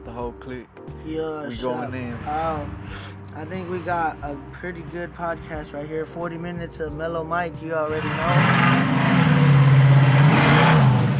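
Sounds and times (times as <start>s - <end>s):
speech: 0.1s - 8.9s
car engine revving outdoors: 1.7s - 4.4s, 7.8s - 11.1s.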